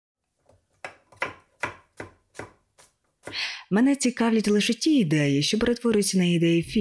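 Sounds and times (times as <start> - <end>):
knife chopping home-grown tomatoes on a cutting board: 0.5 - 3.4
speech: 3.7 - 6.7.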